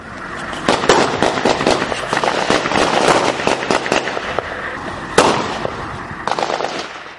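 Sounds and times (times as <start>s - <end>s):
gunfire from armed militants aimed at an army post in a civilian house: 0.7s - 4.4s, 5.2s - 7.1s.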